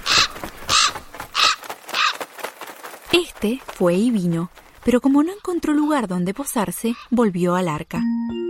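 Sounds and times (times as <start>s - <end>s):
raven cawing: 0.0s - 2.5s, 6.8s - 7.2s
speech: 3.2s - 8.3s.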